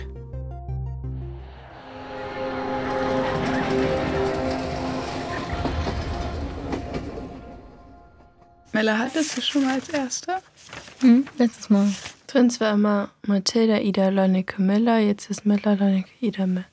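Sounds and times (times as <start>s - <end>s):
train rumbling along the rails: 2.0s - 8.6s
speech: 8.8s - 16.7s.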